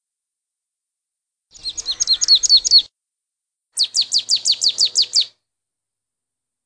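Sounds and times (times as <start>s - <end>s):
marsh tit song of bright high downslurred notes: 1.5s - 2.9s, 3.8s - 5.4s.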